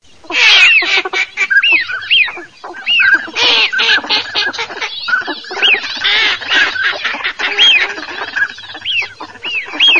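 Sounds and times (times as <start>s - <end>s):
northern pintail and northern shoveler whistling: 0.2s - 9.9s.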